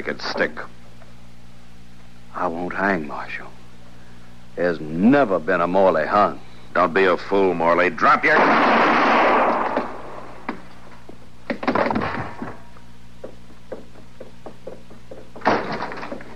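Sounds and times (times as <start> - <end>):
speech: 0.0 - 0.8, 2.4 - 3.6, 4.6 - 8.9
low steady hum: 0.0 - 16.3
gunshots: 8.3 - 10.2.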